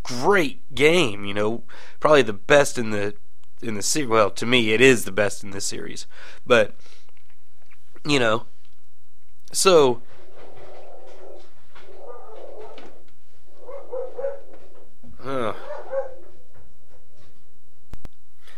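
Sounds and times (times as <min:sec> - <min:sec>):
speech: 0:00.1 - 0:07.0, 0:08.0 - 0:08.5, 0:09.5 - 0:10.1
dog barking: 0:10.8 - 0:13.0, 0:13.6 - 0:14.8, 0:15.6 - 0:16.4.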